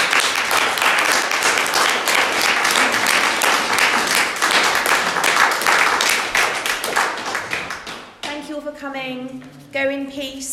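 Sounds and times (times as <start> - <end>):
audience applause: 0.0 - 8.2.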